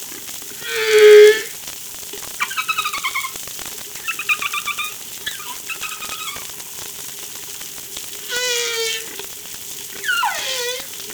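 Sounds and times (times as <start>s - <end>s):
whale calls: 0.6s - 1.6s, 2.2s - 6.9s, 8.2s - 9.3s, 9.9s - 11.1s.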